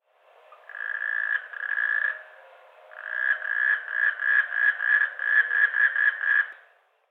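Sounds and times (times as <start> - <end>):
D melanostictus calling: 0.5 - 6.6.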